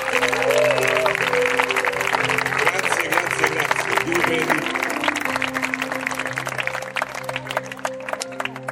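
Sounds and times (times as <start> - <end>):
audience applause: 0.0 - 8.7.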